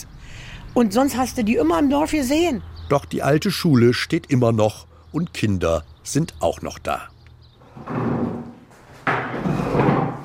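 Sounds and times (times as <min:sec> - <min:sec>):
speech: 0:00.7 - 0:07.1
heavy wooden chairs clunking as taken down from tables in an old primary school: 0:07.6 - 0:10.2.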